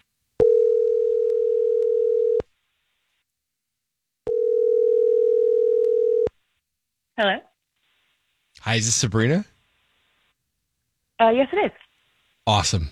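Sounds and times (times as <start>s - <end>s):
telephone line tone while placing a call: 0.4s - 2.4s, 4.3s - 6.3s
speech: 7.2s - 7.5s, 8.7s - 9.5s, 11.2s - 11.8s, 12.5s - 12.9s.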